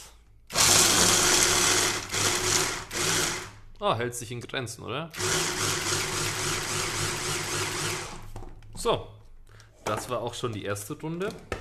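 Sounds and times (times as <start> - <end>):
blender chopping peppers and walnuts: 0.5 - 3.6, 5.2 - 8.3
speech: 3.8 - 5.8, 8.8 - 9.2, 9.9 - 11.5.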